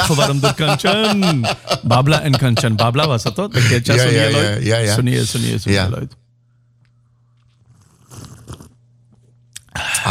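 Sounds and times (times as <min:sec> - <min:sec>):
laughter: 0:00.0 - 0:04.6
speech: 0:00.1 - 0:06.2
loud slurp of coffee: 0:07.6 - 0:08.8
sharp mouth sounds: 0:07.8 - 0:08.8.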